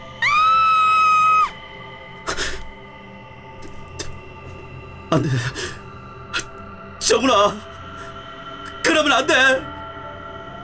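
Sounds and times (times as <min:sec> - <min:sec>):
loud piercing scream: 0:00.2 - 0:01.6
speech: 0:05.1 - 0:05.8, 0:07.2 - 0:07.7, 0:09.0 - 0:09.7.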